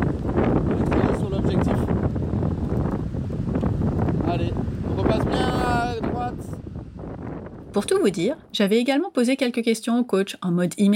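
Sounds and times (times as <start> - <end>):
heavy wind buffeting the microphone: 0.0 - 9.2
speech: 7.8 - 10.9.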